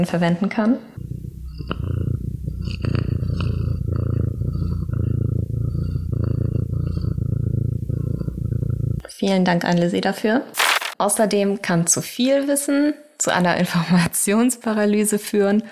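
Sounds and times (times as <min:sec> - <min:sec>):
speech: 0:00.0 - 0:01.1, 0:09.2 - 0:15.6
domestic cat purring while climbing on a person: 0:00.9 - 0:09.1.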